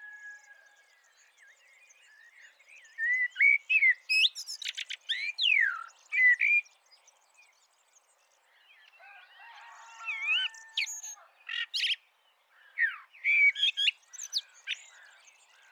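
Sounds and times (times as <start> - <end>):
Eurasian blackbird Turdus merula singing: 1.0 - 6.7, 10.1 - 12.0, 12.6 - 15.6.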